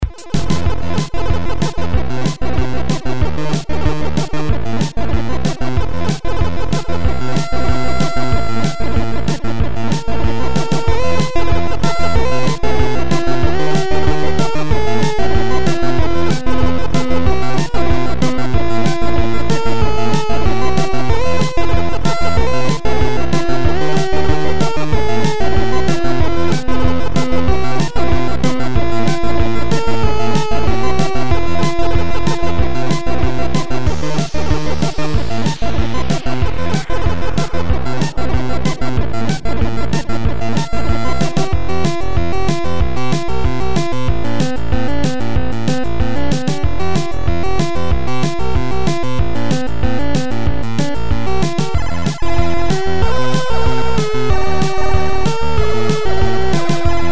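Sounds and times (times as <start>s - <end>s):
game tune: 0.0s - 57.0s.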